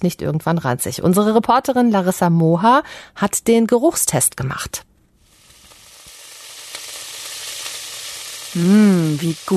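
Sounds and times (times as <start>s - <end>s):
speech: 0.0s - 4.9s, 8.5s - 9.5s
potatoes frying in a cast-iron pan: 5.2s - 9.5s.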